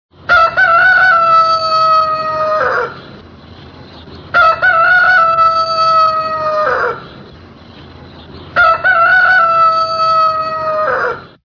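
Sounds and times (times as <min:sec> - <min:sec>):
rooster crowing alarm: 0:00.3 - 0:03.0, 0:04.3 - 0:07.1, 0:08.6 - 0:11.4.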